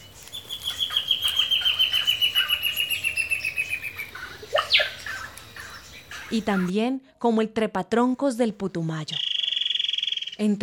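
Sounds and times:
ash-breasted antbird call along a river: 0.0s - 6.7s, 9.1s - 10.5s
speech: 6.3s - 9.3s, 10.4s - 10.6s.

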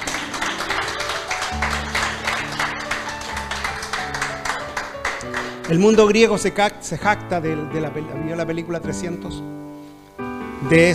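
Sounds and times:
audience applauding: 0.0s - 6.4s
sustained keyboard chords: 0.0s - 10.9s
speech: 5.7s - 9.6s, 10.6s - 10.9s.

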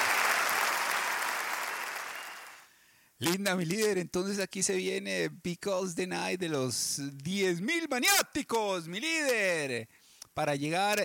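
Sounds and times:
crowd applauding: 0.0s - 2.7s
speech: 3.2s - 11.0s.

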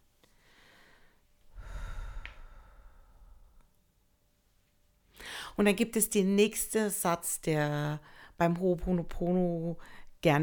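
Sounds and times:
soft exhale during a guided breathing meditation: 0.4s - 3.7s
speech: 5.6s - 10.4s.

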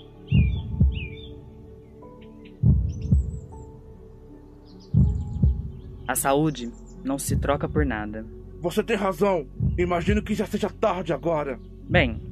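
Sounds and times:
small birds chirping and trilling: 0.0s - 3.9s, 4.5s - 8.3s, 9.6s - 12.3s
weak slow heartbeat thudding in lub-dub beats: 0.3s - 1.3s, 2.6s - 3.6s, 5.0s - 5.9s, 7.3s - 7.9s, 9.6s - 10.4s
speech: 6.1s - 12.2s.

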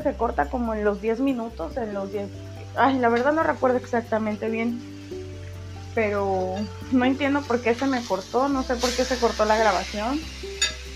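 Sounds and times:
speech: 0.0s - 4.9s, 6.0s - 10.4s
food frying in a pan: 0.0s - 10.9s.

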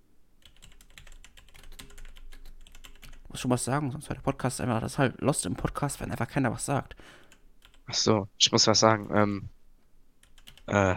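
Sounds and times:
typing on a computer keyboard: 0.4s - 3.2s, 7.3s - 7.8s, 10.2s - 10.7s
speech: 3.4s - 7.3s, 7.9s - 9.6s, 10.7s - 10.9s.

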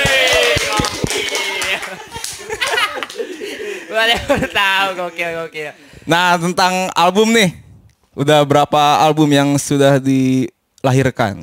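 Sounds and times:
quick uneven hand claps from a few people: 0.0s - 3.5s
laughter: 0.0s - 5.5s
speech: 4.0s - 7.6s, 8.2s - 11.4s.

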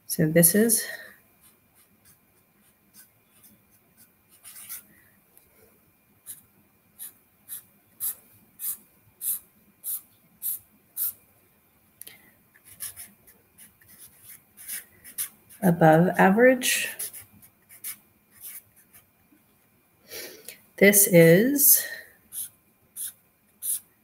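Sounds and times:
speech: 0.1s - 1.1s, 15.6s - 17.0s, 20.8s - 22.0s
pen drawing lines scratching across paper: 1.4s - 4.9s, 6.2s - 6.4s, 7.0s - 11.2s, 12.6s - 15.6s, 17.0s - 19.0s, 22.3s - 23.9s.

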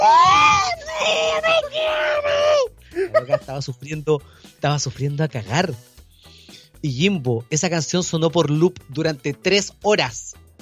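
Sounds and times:
person imitating anguished screaming: 0.0s - 2.7s
laughter: 3.0s - 3.6s
speech: 3.2s - 5.9s, 6.8s - 10.4s.

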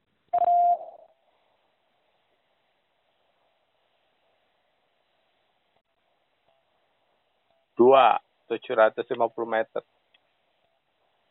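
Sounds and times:
electronic quiz beep signalling time to answer: 0.3s - 1.0s
speech: 7.8s - 10.0s.

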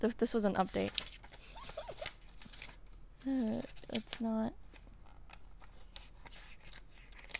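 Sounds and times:
speech: 0.0s - 1.2s, 3.2s - 4.6s
handwritten paper pages rustling and crinkling: 0.6s - 7.3s.

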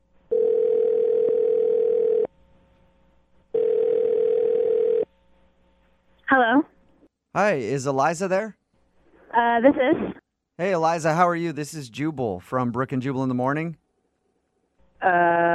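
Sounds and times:
long telephone ringback tones: 0.3s - 2.3s, 3.6s - 5.1s
speech: 7.4s - 8.6s, 9.4s - 13.8s, 15.0s - 15.5s.

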